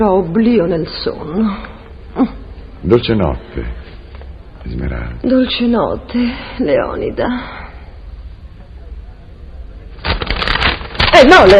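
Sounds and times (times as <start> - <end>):
speech: 0.0 - 3.9, 4.6 - 7.6, 11.2 - 11.5
crisp papery rustling: 9.9 - 11.5.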